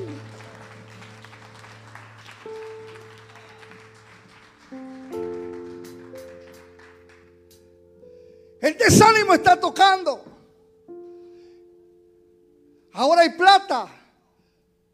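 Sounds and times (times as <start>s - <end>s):
audience applause: 0.0s - 7.3s
sustained keyboard chords: 0.0s - 13.0s
speech: 8.8s - 10.3s, 13.0s - 14.0s.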